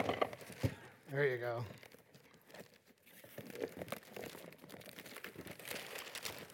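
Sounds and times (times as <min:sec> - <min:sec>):
wrapper crinkling and rustling: 0:00.4 - 0:06.5
speech: 0:01.1 - 0:01.8
wrapper being ripped open: 0:01.8 - 0:06.5.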